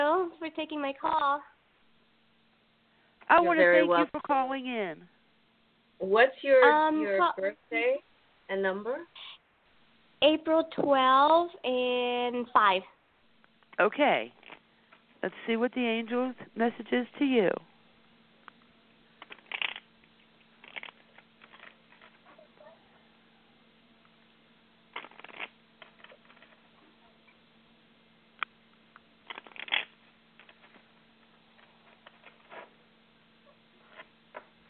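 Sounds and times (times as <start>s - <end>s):
faint steady hum: 0.0s - 34.6s
speech: 0.2s - 1.6s, 3.3s - 5.2s, 6.0s - 9.4s, 10.2s - 13.0s, 13.8s - 14.4s, 15.2s - 17.7s
shuffling of a deck of cards: 19.2s - 19.8s, 20.6s - 22.2s, 24.9s - 26.6s, 29.2s - 30.8s.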